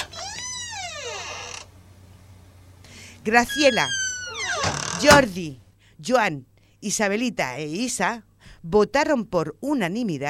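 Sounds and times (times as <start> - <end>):
door creaking shut: 0.0 - 1.7, 3.4 - 5.3
speech: 3.2 - 4.0, 4.6 - 10.2.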